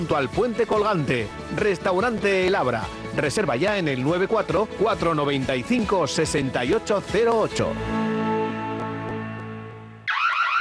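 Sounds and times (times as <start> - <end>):
speech: 0.0 - 8.2
warbling electronic alarm: 10.0 - 10.6
buzzing electronic alarm tone: 10.1 - 10.6.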